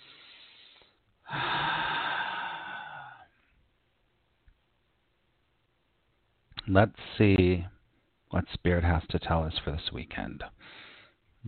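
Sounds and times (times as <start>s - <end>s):
big deep inhale during a guided relaxation: 0.0s - 3.6s, 10.6s - 11.2s
speech: 6.7s - 7.7s, 8.3s - 10.8s.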